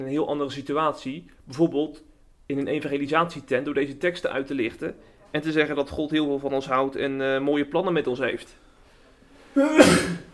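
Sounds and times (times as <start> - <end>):
speech: 0.0 - 8.6, 9.6 - 10.2
sneeze: 9.6 - 10.3.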